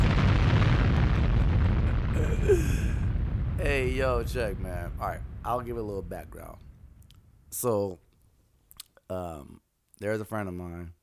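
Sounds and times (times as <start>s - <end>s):
heavy explosion sound effect with deep low-end boom: 0.0s - 8.1s
crackling debris: 0.0s - 8.8s
speech: 3.8s - 6.7s, 7.5s - 8.0s, 9.1s - 11.0s.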